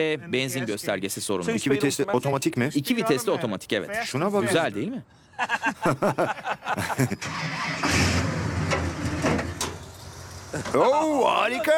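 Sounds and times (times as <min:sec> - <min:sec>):
speech: 0:00.0 - 0:08.5, 0:10.6 - 0:11.7
laughter: 0:05.4 - 0:07.4
1967 GTO 400 engine starting and rumbling: 0:07.2 - 0:10.8.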